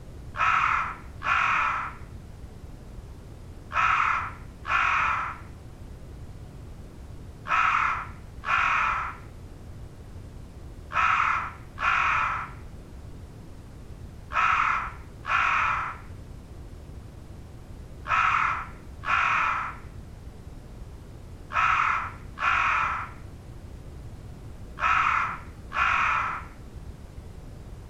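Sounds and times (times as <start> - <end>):
crow in real ambience: 0.4 - 2.1, 3.7 - 5.5, 7.5 - 9.3, 10.9 - 12.6, 14.3 - 16.1, 18.0 - 19.9, 21.5 - 23.2, 24.8 - 26.6.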